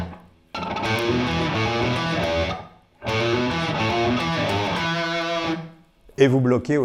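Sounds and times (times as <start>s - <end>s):
heavily distorted electric guitar riff with muted strings on treble pickup: 0.0s - 5.8s
speech: 6.2s - 6.8s.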